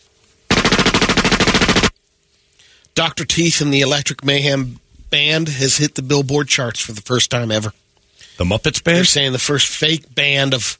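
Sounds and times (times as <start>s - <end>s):
automatic gunfire burst: 0.5s - 1.9s
speech: 3.0s - 7.8s, 8.4s - 10.7s.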